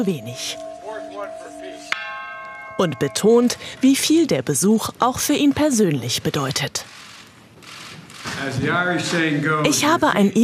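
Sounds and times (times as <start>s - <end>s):
speech: 0.0s - 0.7s, 2.8s - 7.0s, 8.4s - 10.4s
large peace bell rung in honour of the Good Friday Agreement: 0.0s - 5.9s.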